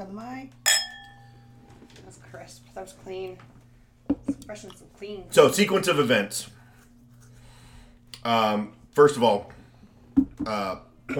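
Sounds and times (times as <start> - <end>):
speech: 0.0 - 0.6, 2.0 - 6.6, 8.2 - 9.6, 10.4 - 11.1
steady low hum: 0.0 - 5.2
glasses clinking in a toast among friends: 0.7 - 1.4.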